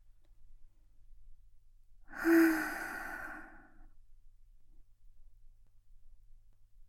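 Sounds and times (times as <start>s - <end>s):
slow breathy exhale during a guided breathing exercise: 2.1s - 3.9s.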